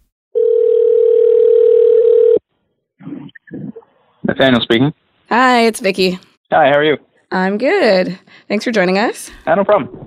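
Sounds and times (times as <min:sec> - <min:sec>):
telephone ringback tone of an outgoing call to a cell phone: 0:00.4 - 0:02.4
speech: 0:04.4 - 0:10.0.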